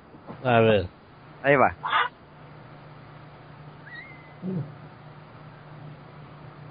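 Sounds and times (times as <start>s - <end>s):
speech: 0.4s - 2.0s, 4.4s - 4.8s
cartoon character's excited high-pitched yelp sound effect: 1.8s - 2.1s
low brief grunt: 4.4s - 4.8s.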